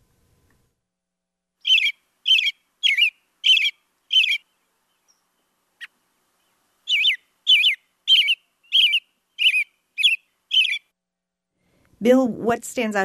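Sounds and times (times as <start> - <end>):
American robin singing warbling phrases: 1.6 - 10.9
speech: 12.0 - 13.0.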